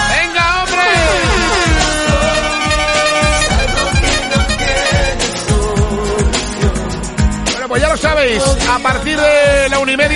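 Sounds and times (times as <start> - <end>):
rhythmic thumping beats: 0.0 - 10.1
truck air horn blaring: 0.8 - 5.5
speech: 8.3 - 10.1.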